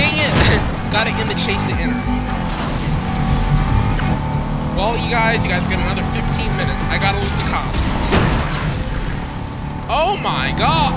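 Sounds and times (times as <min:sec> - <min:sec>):
video game car crash: 0:00.0 - 0:04.2, 0:07.2 - 0:09.6
video game engine and debris noise: 0:00.0 - 0:10.9
speech: 0:00.9 - 0:02.7, 0:04.8 - 0:08.4, 0:09.9 - 0:10.9.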